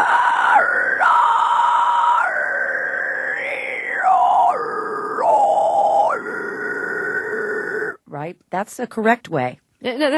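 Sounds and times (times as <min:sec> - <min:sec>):
harsh raspy false-cord scream: 0:00.0 - 0:08.0
speech: 0:08.3 - 0:10.1.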